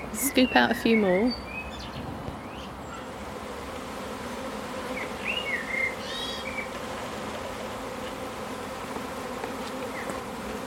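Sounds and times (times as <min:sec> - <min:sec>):
birds chirping: 0:00.0 - 0:03.3, 0:04.8 - 0:06.8, 0:09.8 - 0:10.2
swarm of bees buzzing around hive: 0:00.0 - 0:10.6
speech: 0:00.3 - 0:01.5.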